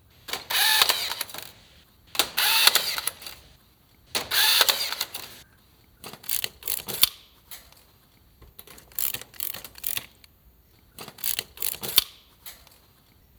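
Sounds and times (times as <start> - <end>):
steel joining: 0.1 - 3.5, 4.1 - 5.4.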